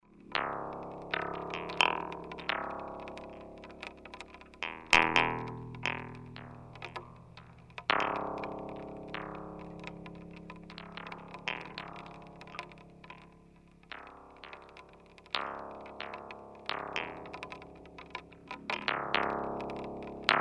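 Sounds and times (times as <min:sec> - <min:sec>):
rain plucks: 0:00.3 - 0:20.3.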